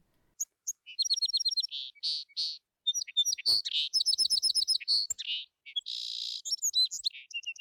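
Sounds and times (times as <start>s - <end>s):
sparrow singing with rapid chirps, trills and buzzy notes: 0.4s - 7.5s.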